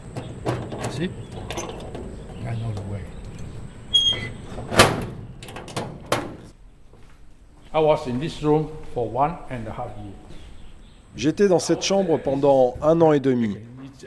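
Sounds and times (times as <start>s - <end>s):
code-locked door in a former prison building being unlocked and opened: 0.0s - 2.4s, 3.2s - 6.5s
speech: 1.0s - 1.7s, 2.5s - 3.2s, 7.7s - 10.3s, 11.1s - 14.0s.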